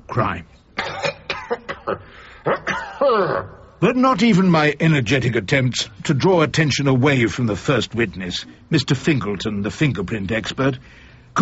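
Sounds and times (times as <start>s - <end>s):
speech: 0.2s - 0.6s, 1.5s - 11.4s
person with influenza coughing in a courtroom: 0.8s - 3.6s.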